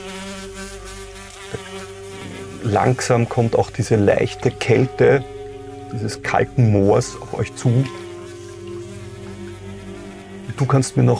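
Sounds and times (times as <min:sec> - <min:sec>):
insects humming on a cold moor: 0:00.0 - 0:11.1
speech: 0:02.7 - 0:08.0, 0:10.6 - 0:11.1.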